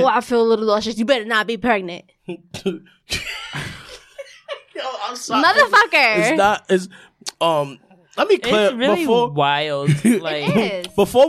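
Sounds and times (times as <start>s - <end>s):
speech: 0.0s - 3.8s, 4.8s - 11.2s
person coughing harshly: 2.3s - 4.1s, 9.9s - 10.7s.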